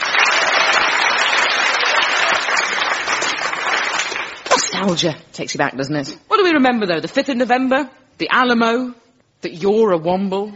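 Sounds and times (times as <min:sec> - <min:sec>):
audience clapping hands in sustained applause: 0:00.0 - 0:04.5
speech: 0:04.8 - 0:10.5.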